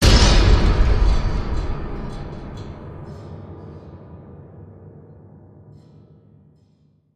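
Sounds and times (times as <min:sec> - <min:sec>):
big piano slam hit: 0:00.0 - 0:05.7.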